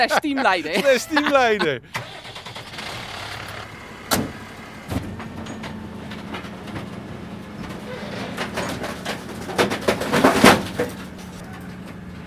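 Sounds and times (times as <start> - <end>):
laughter: 0.0 - 2.0
speech: 0.0 - 2.0
heavy garbage truck engine droning: 0.8 - 12.2
garbage truck compactor crunching a large bulky object: 4.1 - 12.0.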